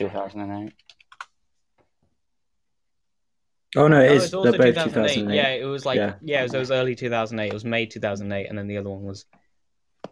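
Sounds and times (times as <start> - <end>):
speech: 0.0 - 1.0, 3.7 - 9.4
computer keyboard keys being pressed: 0.7 - 1.4.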